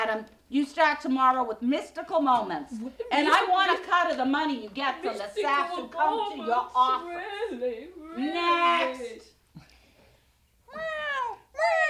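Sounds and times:
speech: 0.1 - 9.3
cat meowing: 10.7 - 11.8.

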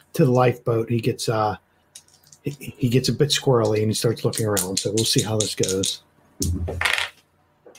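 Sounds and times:
speech: 0.2 - 1.6, 2.4 - 7.1
two dice clattering across a hard tabletop: 3.6 - 6.0, 6.8 - 7.2.

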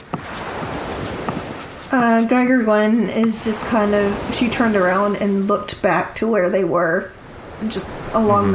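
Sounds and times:
pen scratching on loose-leaf paper drawing a blueprint: 1.0 - 3.8
speech: 1.9 - 8.5.

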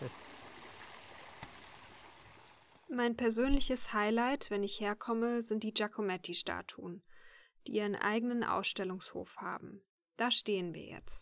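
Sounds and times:
speech: 0.0 - 0.3, 2.9 - 11.2
water flowing in an outdoor fountain: 0.0 - 2.9.

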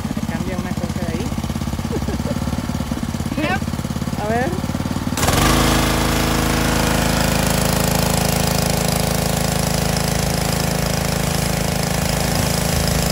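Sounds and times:
pressure washer spraying water on a house exterior to clear mold: 0.0 - 13.1
laughter: 1.8 - 2.6.

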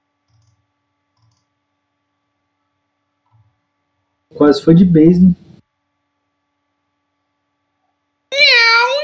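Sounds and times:
speech: 4.3 - 5.4
cat meowing in a video game: 8.3 - 9.0.

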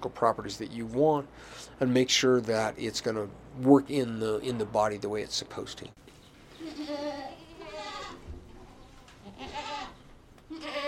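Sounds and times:
speech: 0.0 - 7.3
steady barn hum: 0.0 - 10.8
goats bleating in a large barn at a university stock farm: 6.6 - 10.8.

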